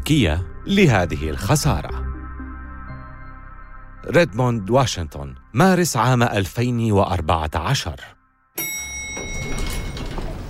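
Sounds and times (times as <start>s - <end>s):
speech: 0.1s - 2.0s, 4.0s - 8.7s
bright elevator chime: 8.6s - 10.4s
elevator doors sliding open: 9.0s - 10.4s.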